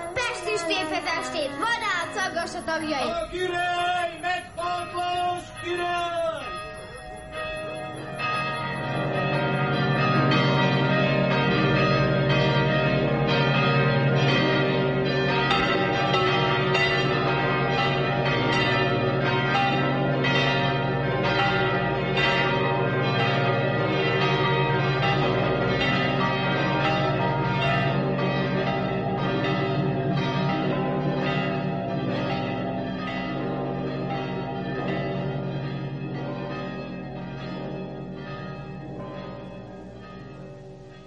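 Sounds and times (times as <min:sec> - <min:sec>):
church bells pealing: 0:00.0 - 0:41.0
speech: 0:00.8 - 0:06.6.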